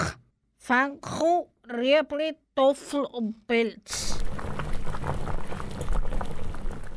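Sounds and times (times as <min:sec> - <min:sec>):
speech: 0:00.7 - 0:04.2
water boiling for glass noodles: 0:03.9 - 0:06.9.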